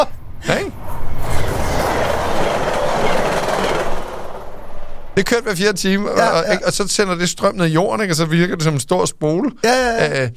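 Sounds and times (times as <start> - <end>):
TGV high-speed train running from Geneva to Paris: 0.0 - 7.2
rhythmic clatter of TGV train wheels on rails: 1.2 - 5.6
speech: 5.2 - 10.3.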